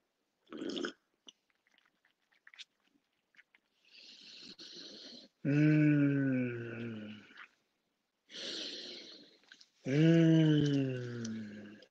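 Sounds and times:
person gulping, swallowing and slurping water from a glass: 0.5 - 5.3, 5.9 - 7.6, 9.1 - 11.8
speech: 5.4 - 6.2.

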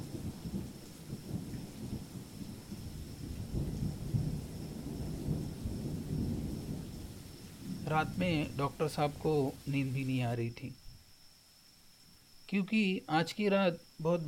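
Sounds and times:
deep continuous rolling thunder at a remote forest rest house: 0.0 - 9.7
heavy torrential rain at a rest house in a remote forest: 0.0 - 10.5
speech: 7.9 - 10.8, 12.5 - 14.2.

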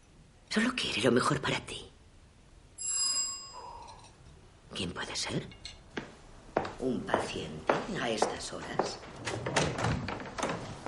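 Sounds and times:
speech: 0.5 - 1.9, 4.8 - 5.6, 6.8 - 10.0
soft knocks and thuds of door handle and frame: 7.7 - 10.8
door opening: 8.8 - 10.8.

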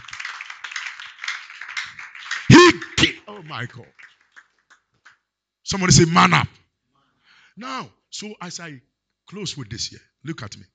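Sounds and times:
audience clapping hands: 0.0 - 5.3
speech: 2.7 - 4.0, 5.7 - 6.6, 7.6 - 10.7.

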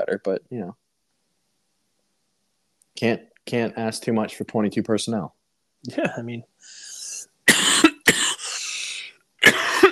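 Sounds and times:
speech: 0.0 - 0.8, 3.0 - 6.8
person coughing harshly: 7.5 - 8.7, 9.4 - 9.9.

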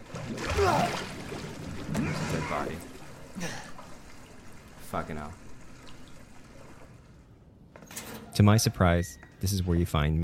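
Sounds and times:
faint water trickling: 0.0 - 7.7
speech: 2.5 - 3.7, 4.9 - 5.4, 8.4 - 10.2.

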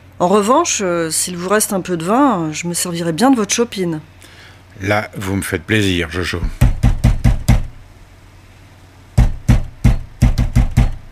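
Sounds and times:
speech: 0.2 - 4.2, 4.8 - 6.7
heavy pounding on a door: 6.4 - 7.8, 9.2 - 11.1.

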